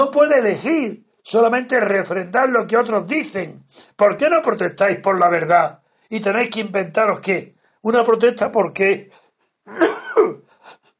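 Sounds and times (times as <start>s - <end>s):
speech: 0.0s - 10.4s
harsh coughs: 9.7s - 10.7s.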